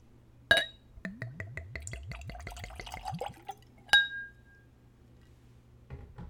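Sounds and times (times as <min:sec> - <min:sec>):
whiskey glugging from a bottle into a Glencairn nosing glass: 0:01.1 - 0:03.7
sharp glass clink: 0:03.9 - 0:04.6.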